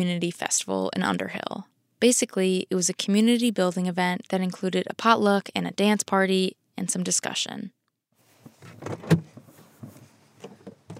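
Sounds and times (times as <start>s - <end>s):
speech: 0.0s - 7.8s, 8.7s - 9.3s
faint rustling: 8.2s - 10.9s
soft shuffling footsteps: 8.2s - 10.9s
car door creaking and thudding shut: 8.5s - 10.9s.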